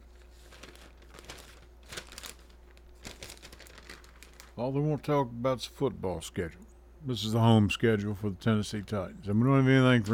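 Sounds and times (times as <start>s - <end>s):
newspaper pages rustling and crinkling while handled: 0.0s - 4.6s
steady low hum: 0.0s - 10.1s
speech: 4.6s - 10.1s.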